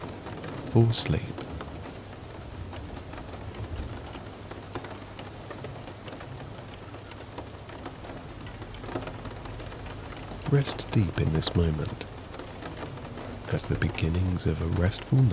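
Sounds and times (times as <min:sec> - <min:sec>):
rain droplets pattering against a slightly open window: 0:00.0 - 0:15.3
speech: 0:00.7 - 0:01.5, 0:10.5 - 0:12.1, 0:13.5 - 0:15.3.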